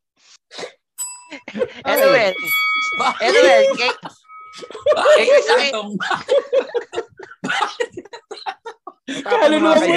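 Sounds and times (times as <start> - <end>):
bright bell ring with a clear sustained metallic tone: 1.0 - 5.8
speech: 1.5 - 7.8, 9.2 - 9.9
people laughing: 2.9 - 9.9.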